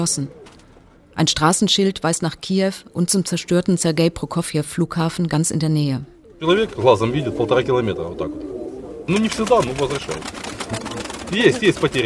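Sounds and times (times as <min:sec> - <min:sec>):
speech: 0:00.0 - 0:00.4, 0:01.2 - 0:12.0
pigeons cooing: 0:00.0 - 0:01.1, 0:05.8 - 0:12.0.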